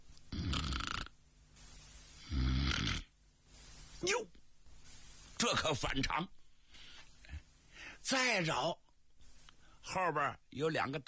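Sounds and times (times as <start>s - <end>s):
person imitating snoring: 0.3s - 1.1s, 2.2s - 3.1s
speech: 4.0s - 4.4s, 5.4s - 6.4s, 8.0s - 8.8s, 10.0s - 11.0s.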